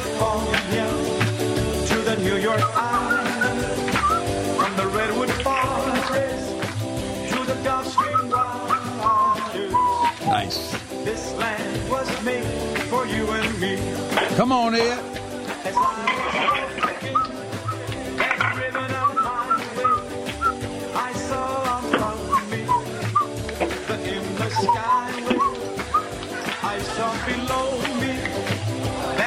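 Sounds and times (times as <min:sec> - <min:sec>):
instrumental backing with rhythmic strikes: 0:00.0 - 0:29.2
man whistling a folk-style melody: 0:02.4 - 0:05.8, 0:07.7 - 0:10.7, 0:15.7 - 0:17.9, 0:18.7 - 0:21.1, 0:22.0 - 0:23.4, 0:24.4 - 0:26.2
speech: 0:13.0 - 0:16.8.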